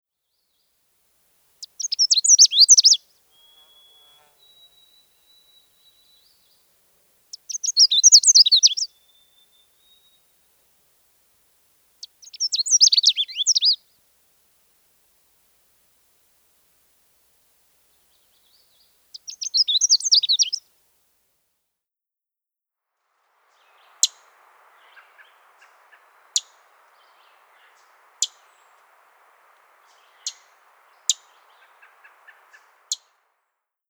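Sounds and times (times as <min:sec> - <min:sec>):
Canada Warbler singing: 0:01.6 - 0:10.3, 0:12.0 - 0:13.8, 0:18.0 - 0:20.6, 0:23.7 - 0:33.0.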